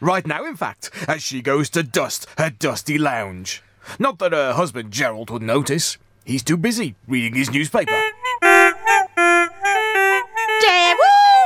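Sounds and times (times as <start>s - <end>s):
speech: 0.0s - 8.2s
honking from something hidden inside the wainscoting of a lounge: 7.8s - 11.4s.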